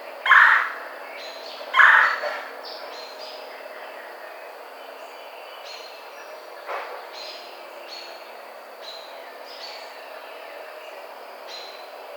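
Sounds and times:
steady background hiss: 0.0 - 12.1
red-bellied woodpecker giving short calls: 0.3 - 0.8, 1.8 - 2.4.

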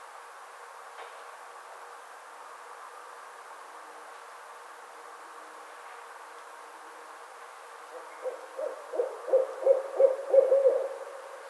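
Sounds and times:
barred owl hooting: 8.0 - 11.4.

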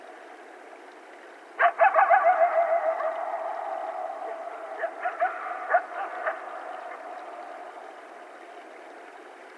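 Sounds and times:
several coyotes howling in chorus: 1.6 - 8.3.

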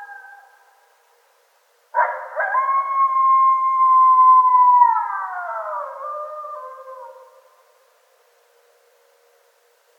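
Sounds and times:
several coyotes howling: 0.0 - 0.9, 2.0 - 7.7.

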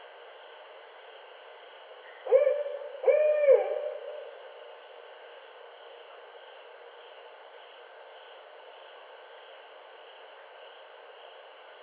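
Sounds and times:
barred owl hooting: 2.0 - 4.6.

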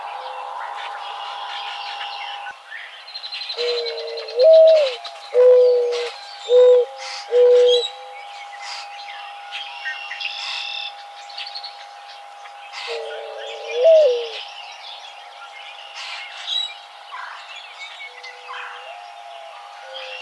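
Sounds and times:
mourning dove cooing: 3.6 - 8.2, 12.8 - 14.5, 18.1 - 20.2.

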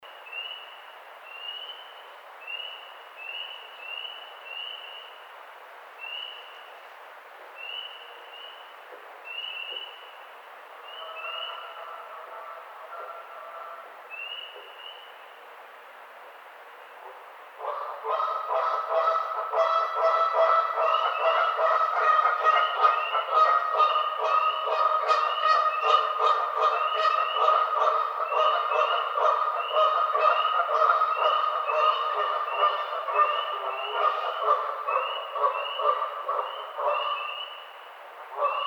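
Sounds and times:
Canada Goose: 10.9 - 13.9, 17.6 - 37.4, 38.3 - 38.6.

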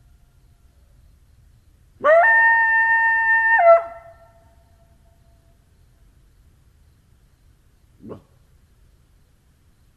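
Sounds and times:
coyote howling: 2.0 - 4.3.

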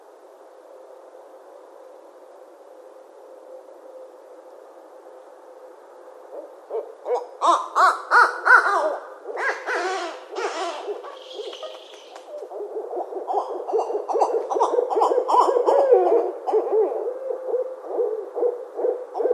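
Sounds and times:
barred owl cackling hoots and harsh yelps: 6.3 - 19.3.

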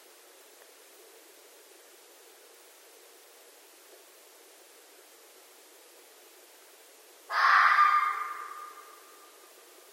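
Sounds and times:
red fox harsh hoarse call at night: 7.3 - 9.0.

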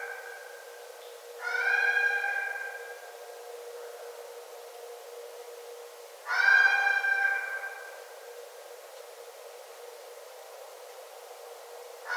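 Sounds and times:
red fox screaming: 1.4 - 2.8, 6.3 - 7.9.

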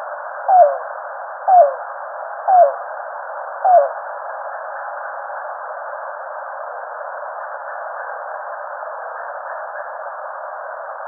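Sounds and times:
Yellow-billed cuckoo uttering short falling notes: 0.5 - 0.8, 1.5 - 1.8, 2.5 - 2.8, 3.6 - 4.0.

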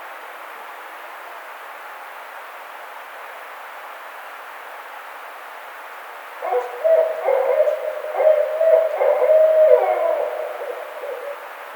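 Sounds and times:
barred owl hooting: 6.4 - 11.7.

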